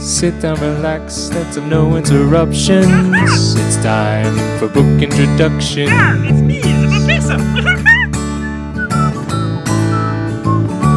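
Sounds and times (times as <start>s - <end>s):
speech: 0.0s - 7.9s
laughter: 2.9s - 3.5s, 5.9s - 9.1s
bright whistled melody: 7.8s - 10.9s.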